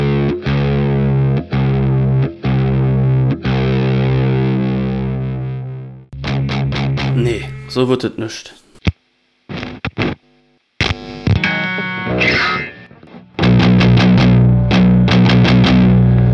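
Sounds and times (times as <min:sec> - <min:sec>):
heavily distorted low-tuned electric guitar palm-muted riffing: 0:00.0 - 0:16.3
speech: 0:07.8 - 0:08.6.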